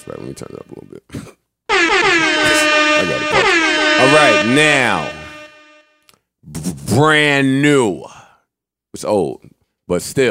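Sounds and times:
loud sustained brassy air horn blast: 0.0 - 0.6, 1.7 - 5.9
speech: 0.1 - 1.4, 3.0 - 5.2, 6.5 - 8.2, 8.9 - 10.2.

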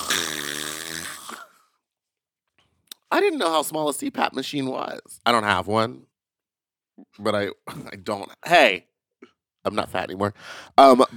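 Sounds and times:
person imitating a snore with their voice: 0.0 - 1.6
speech: 3.2 - 6.1, 7.0 - 8.9, 9.6 - 11.1.

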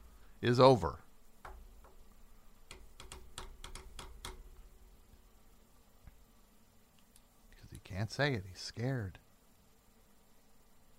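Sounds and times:
low steady hum: 0.0 - 10.9
speech: 0.4 - 1.0, 8.1 - 9.2
keyboard typing: 2.7 - 4.4.

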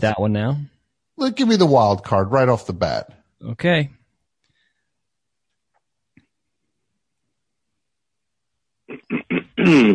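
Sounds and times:
speech: 0.0 - 4.0, 9.6 - 9.9
phone-in caller clearing his throat: 8.9 - 9.9.

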